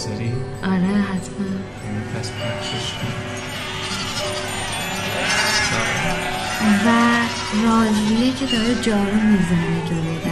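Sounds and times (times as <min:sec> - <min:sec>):
speech: 0:00.0 - 0:03.1, 0:06.6 - 0:10.2
steady outdoor hum in a high-altitude village: 0:00.5 - 0:10.2
grazing livestock bleating in a treeless high-altitude village: 0:03.4 - 0:10.2.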